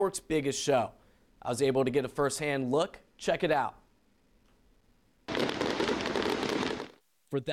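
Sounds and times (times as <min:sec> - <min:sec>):
speech: 0:00.0 - 0:03.8, 0:07.3 - 0:07.5
fireworks exploding at a show: 0:05.3 - 0:07.0.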